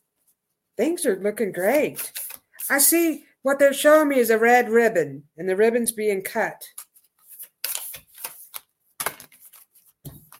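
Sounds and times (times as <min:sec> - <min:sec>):
speech: 0:00.8 - 0:06.8
playing cards being shuffled and handled: 0:01.7 - 0:02.9, 0:06.7 - 0:10.3.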